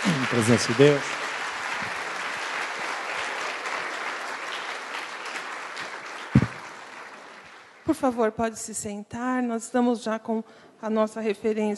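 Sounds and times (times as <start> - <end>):
audience applauding: 0.0 - 8.0
speech: 0.1 - 1.2, 7.9 - 11.7.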